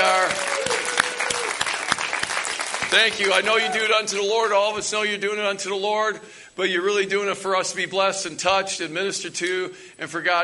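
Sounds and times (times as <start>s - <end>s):
sharp individual claps: 0.0s - 3.5s
standing church audience applause: 0.0s - 4.0s
speech: 2.9s - 10.4s.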